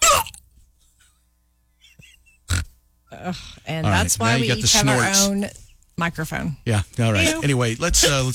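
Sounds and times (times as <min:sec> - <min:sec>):
hiccups: 0:00.0 - 0:00.4, 0:01.9 - 0:02.8
speech: 0:03.1 - 0:08.3.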